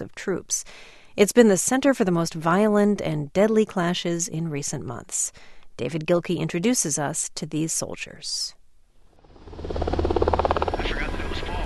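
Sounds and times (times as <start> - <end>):
speech: 0.2 - 8.6, 9.5 - 11.0
Black Hawk helicopter rotor thumping in flight: 9.2 - 11.6
deep helicopter engine drone: 9.2 - 11.6.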